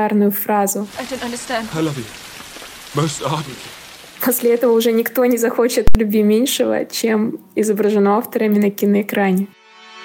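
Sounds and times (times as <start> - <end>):
speech: 0.0 - 9.6
steady rain pattering as a continuous hiss: 0.7 - 6.0
soaked people arguing in the rain: 0.8 - 4.5.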